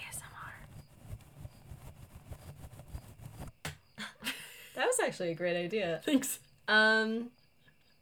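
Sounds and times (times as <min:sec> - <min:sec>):
fluffy paintbrush bristles sweeping over a microphone: 0:00.0 - 0:03.6
speech: 0:04.8 - 0:07.4.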